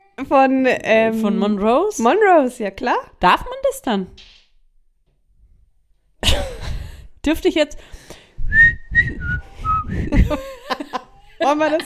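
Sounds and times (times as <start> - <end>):
speech: 0.2 - 4.4, 7.2 - 11.8
person whistling a short pop-style melody: 8.5 - 10.2
laughter: 10.1 - 11.8.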